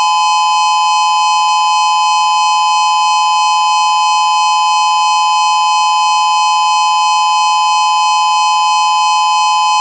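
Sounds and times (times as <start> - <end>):
steady outdoor warning siren from a directional speaker array: 0.0 - 9.7.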